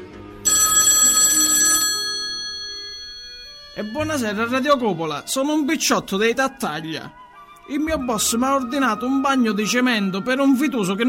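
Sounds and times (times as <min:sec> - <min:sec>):
telephone bell ringing for an incoming listener call: 0:00.4 - 0:04.6
speech: 0:03.8 - 0:11.0.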